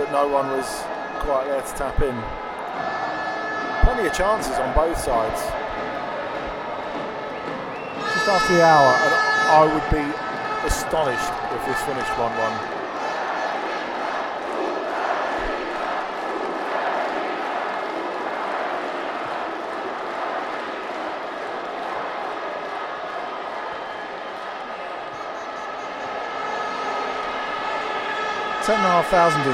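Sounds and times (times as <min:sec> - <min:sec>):
large football stadium crowd roaring: 0:00.0 - 0:29.5
speech: 0:00.1 - 0:03.2, 0:03.8 - 0:05.6, 0:08.2 - 0:12.8, 0:28.7 - 0:29.5.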